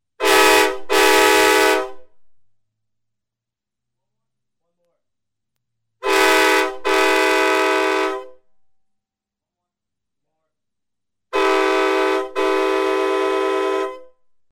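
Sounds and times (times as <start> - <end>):
train horn: 0.2 - 2.1, 6.0 - 8.4, 11.3 - 14.2.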